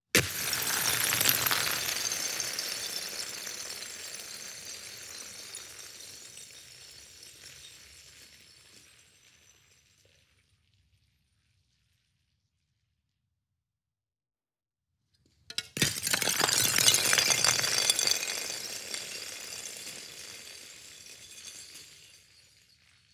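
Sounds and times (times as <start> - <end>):
ice sliding: 0.2 - 6.3, 15.8 - 22.4
ice dropping and shattering outdoors: 0.2 - 8.9, 15.8 - 23.0.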